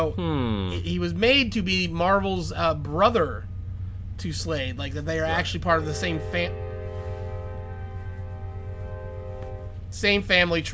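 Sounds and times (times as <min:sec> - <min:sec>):
speech: 0:00.0 - 0:03.5, 0:04.2 - 0:06.6, 0:09.9 - 0:10.7
low rumble: 0:00.7 - 0:10.4
train horn blowing a chord of layered tones: 0:05.2 - 0:10.5.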